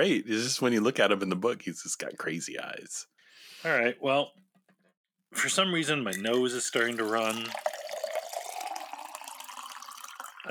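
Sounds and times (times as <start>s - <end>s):
speech: 0.0s - 4.4s, 5.3s - 7.8s
drink pouring into a glass: 6.1s - 10.5s.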